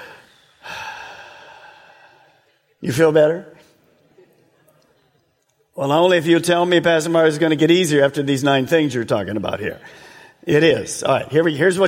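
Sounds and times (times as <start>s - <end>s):
person taking a deep breath: 0.0s - 2.5s
speech: 2.8s - 3.6s, 5.8s - 11.8s.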